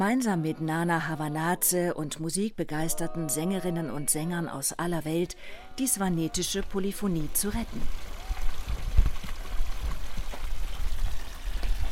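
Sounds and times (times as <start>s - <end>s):
speech: 0.0s - 8.0s
old stone fountain splashing water: 6.4s - 11.9s.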